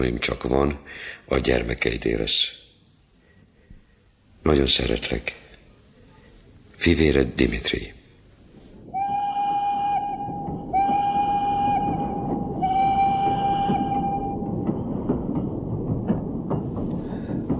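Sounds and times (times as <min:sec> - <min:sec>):
speech: 0:00.0 - 0:02.6, 0:04.4 - 0:05.4, 0:06.8 - 0:08.0
train rumbling along the tracks with loud clatter: 0:08.8 - 0:17.5
train horn long blasts: 0:08.9 - 0:14.5
train wheels clicking over rail joints: 0:10.2 - 0:17.5.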